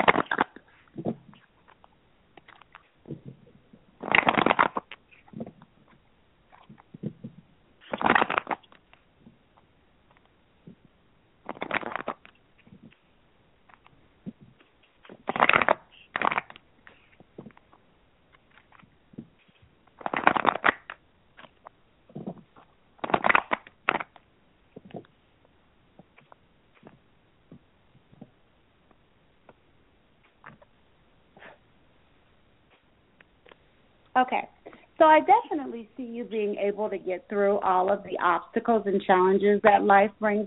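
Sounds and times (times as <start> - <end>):
tarot cards being shuffled: 0.0 - 3.4, 4.0 - 9.1, 11.5 - 13.0, 13.7 - 25.2
speech: 34.2 - 40.4.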